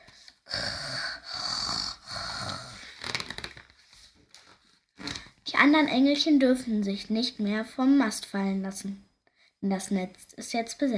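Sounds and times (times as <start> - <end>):
snoring: 0.5 - 2.8
speech: 5.6 - 10.9.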